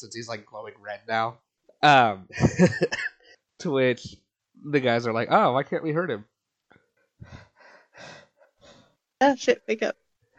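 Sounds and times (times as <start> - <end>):
speech: 0.0 - 6.3, 9.2 - 10.3
laughter: 2.3 - 3.0
person panting heavily to catch breath: 7.2 - 8.9.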